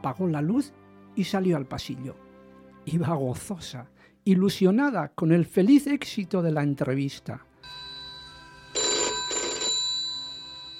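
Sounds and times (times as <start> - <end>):
speech: 0.0 - 2.2, 2.8 - 7.8
telephone bell ringing in rattling bursts: 7.6 - 10.7.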